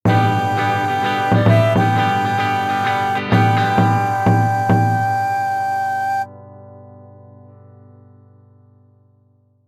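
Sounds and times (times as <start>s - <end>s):
Japanese-style jingle: 0.1s - 6.0s.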